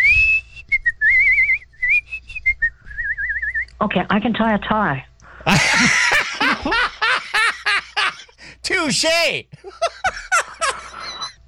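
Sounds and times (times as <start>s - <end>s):
person whistling a bright wavering tune: 0.0s - 3.6s
speech: 3.8s - 7.0s, 8.6s - 9.5s
laughter: 5.4s - 8.4s, 9.6s - 11.4s.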